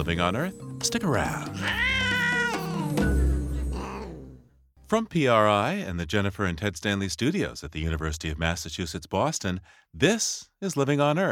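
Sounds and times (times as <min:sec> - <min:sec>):
speech: 0:00.0 - 0:01.9, 0:04.9 - 0:11.3
cat meowing: 0:01.3 - 0:03.1.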